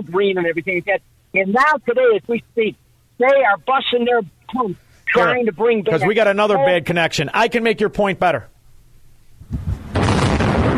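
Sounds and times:
speech: 0:00.0 - 0:08.5
controlled demolition explosion of power station: 0:09.4 - 0:10.7.

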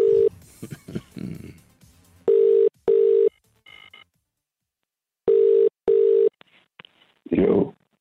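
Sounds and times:
telephone ringing tone while calling someone: 0:00.0 - 0:00.3, 0:02.3 - 0:04.0, 0:05.3 - 0:06.3.

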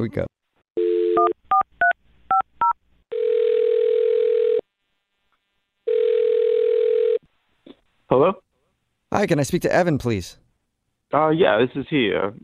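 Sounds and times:
speech: 0:00.0 - 0:00.4, 0:08.1 - 0:08.4, 0:09.1 - 0:10.4, 0:11.1 - 0:12.4
phone dial tone: 0:00.8 - 0:01.4, 0:03.1 - 0:04.6, 0:05.9 - 0:07.2.

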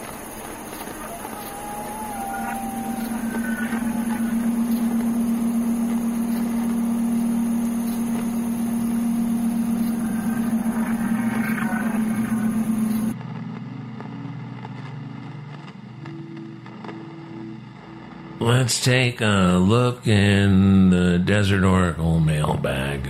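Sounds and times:
car engine hum on a flooded interstate in Arizona: 0:00.0 - 0:13.2
faint passing tones: 0:00.0 - 0:13.2
heavy rain: 0:00.0 - 0:13.2
speech: 0:18.5 - 0:23.0.

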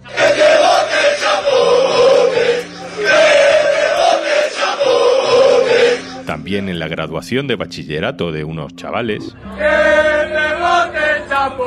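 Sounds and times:
dense crowd roar: 0:00.0 - 0:06.2
large crowd of football fans chanting at a promotion celebration: 0:00.0 - 0:06.3, 0:09.5 - 0:11.6
speech: 0:06.5 - 0:11.6.

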